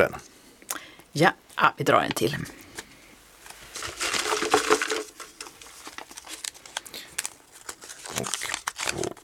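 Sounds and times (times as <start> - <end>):
speech: 0.0 - 0.3, 1.2 - 2.6
small paper slip rustling and crinkling as it is unfolded: 2.7 - 9.2.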